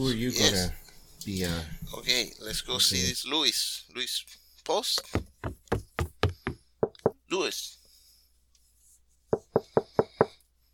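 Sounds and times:
speech: 0:00.0 - 0:05.8, 0:07.3 - 0:07.8
knocking on a door: 0:05.0 - 0:07.2, 0:09.3 - 0:10.4.

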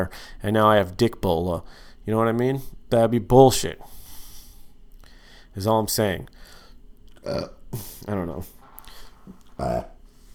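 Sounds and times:
speech: 0:00.0 - 0:04.0, 0:05.6 - 0:06.6, 0:07.2 - 0:08.6, 0:09.6 - 0:09.9
loud throaty burp after drinking Pepsi Max: 0:07.2 - 0:07.6, 0:09.6 - 0:10.0.

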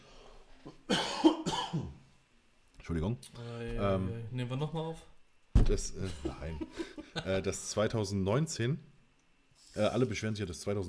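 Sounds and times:
harsh coughs: 0:00.7 - 0:02.0
speech: 0:02.9 - 0:08.9, 0:09.8 - 0:10.8
laughter: 0:06.0 - 0:07.5.

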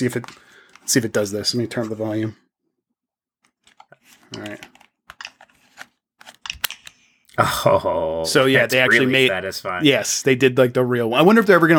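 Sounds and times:
speech: 0:00.0 - 0:02.4, 0:04.3 - 0:04.7, 0:07.4 - 0:11.7
plastic clicks of game controller sliding onto console: 0:03.7 - 0:07.0.

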